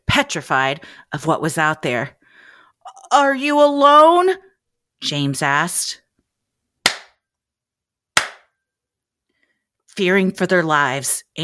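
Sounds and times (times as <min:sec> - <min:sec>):
speech: 0:00.2 - 0:02.2, 0:03.1 - 0:04.4, 0:05.0 - 0:06.0, 0:10.0 - 0:11.4
sharp crisp hand claps: 0:06.8 - 0:07.2, 0:08.2 - 0:08.5.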